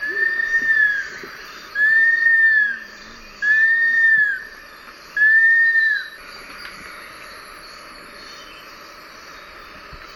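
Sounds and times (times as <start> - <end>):
Long-billed Woodcreeper whistled call: 0.0 - 6.2
faint background hiss: 0.0 - 10.1.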